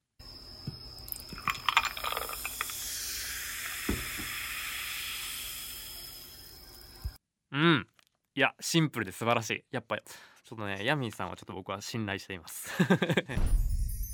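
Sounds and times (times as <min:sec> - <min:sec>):
steady crackling fizz of carbonated drink bubbles: 0:01.0 - 0:07.2
carbonated drink poured into a cup: 0:01.1 - 0:06.4
speech: 0:07.6 - 0:13.7
laughter: 0:12.6 - 0:13.4.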